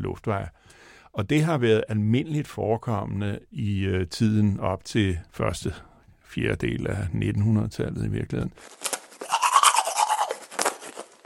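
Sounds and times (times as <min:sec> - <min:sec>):
speech: 0:00.1 - 0:08.9
toothbrush scrubbing teeth: 0:09.2 - 0:11.2.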